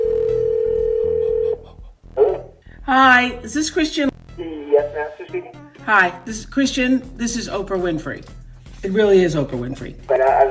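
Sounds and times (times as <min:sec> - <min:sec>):
electronic ringback tone from an outgoing phone call to a cell phone: 0:00.0 - 0:01.6
soft rhythmic background: 0:00.0 - 0:10.4
speech: 0:02.9 - 0:04.1, 0:04.8 - 0:10.4.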